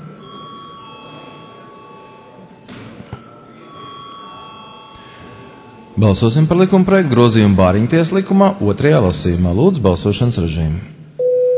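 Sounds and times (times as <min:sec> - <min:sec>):
parliament chamber bell ringing to call a vote: 0:00.0 - 0:06.9
speech: 0:06.0 - 0:11.0.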